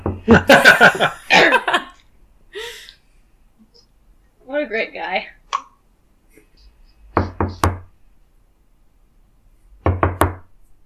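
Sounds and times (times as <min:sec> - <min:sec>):
firm knocks on a wooden door: 0:00.0 - 0:00.3, 0:07.2 - 0:07.9, 0:09.8 - 0:10.4
speech: 0:00.2 - 0:01.2
laughter: 0:00.3 - 0:02.0.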